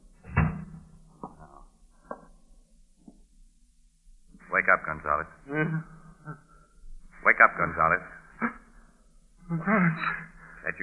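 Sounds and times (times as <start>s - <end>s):
door thudding shut: 0.3s - 0.8s
speech: 4.7s - 6.5s, 7.4s - 8.2s, 9.5s - 10.8s.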